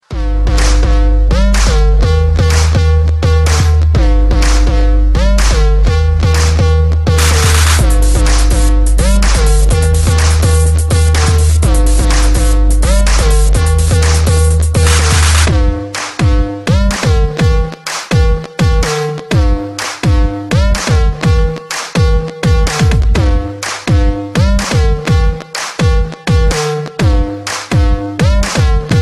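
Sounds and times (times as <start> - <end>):
instrumental music: 0.1 - 29.0.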